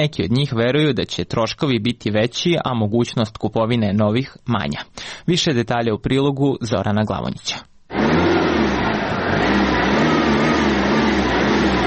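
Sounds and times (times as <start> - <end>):
speech: 0.0 - 7.7
old taxi car engine running smoothly: 7.9 - 11.8.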